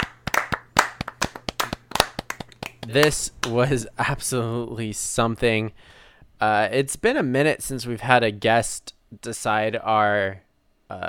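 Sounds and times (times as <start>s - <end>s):
hosts clapping their hands: 0.0s - 3.7s
speech: 2.9s - 11.0s.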